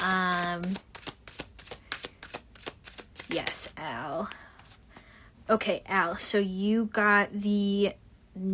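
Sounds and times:
tarot cards being shuffled: 0:00.0 - 0:04.9
speech: 0:05.5 - 0:08.5.

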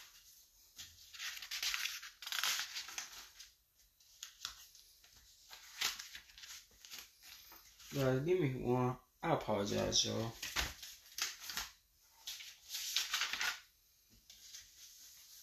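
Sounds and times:
papers rustling while searching for notes: 0:00.0 - 0:08.2, 0:10.1 - 0:15.4
speech: 0:07.9 - 0:10.4.

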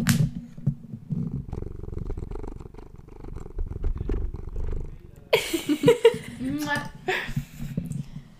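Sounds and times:
loud rustling and shuffling: 0:00.0 - 0:08.3
cat purring: 0:00.3 - 0:06.5
laughter: 0:05.3 - 0:07.4.

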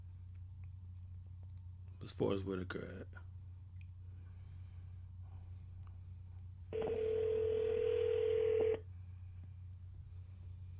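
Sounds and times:
low hum: 0:00.0 - 0:10.7
speech: 0:02.0 - 0:03.3
hissy phone line: 0:06.8 - 0:08.8
telephone ringback tone from an outgoing call: 0:06.8 - 0:08.8.

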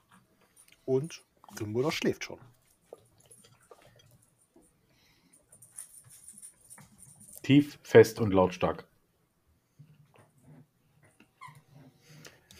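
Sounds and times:
speech: 0:00.9 - 0:02.6, 0:07.5 - 0:08.9
dog squeaking a toy: 0:11.4 - 0:11.6.

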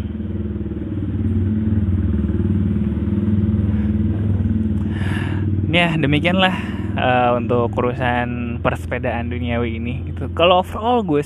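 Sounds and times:
loud motorcycle engine passing: 0:00.0 - 0:11.2
speech: 0:05.8 - 0:11.2.

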